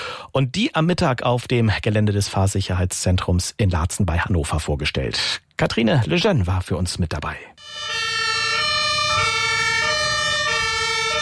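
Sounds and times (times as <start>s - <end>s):
speech: 0.4s - 7.6s
fire service, police and Johanniter emergency vehicle sirens wailing: 7.6s - 11.1s.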